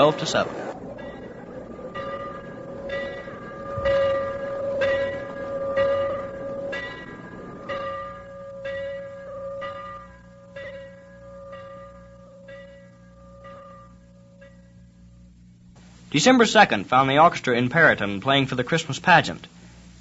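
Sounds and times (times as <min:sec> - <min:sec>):
speech: 0:00.0 - 0:00.7, 0:16.2 - 0:19.9
victory bell ringing: 0:00.0 - 0:14.8
low rumbling background: 0:00.0 - 0:19.9.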